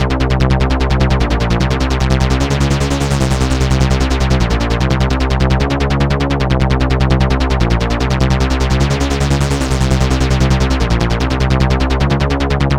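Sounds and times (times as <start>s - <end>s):
acid trance techno bass: 0.0s - 12.7s.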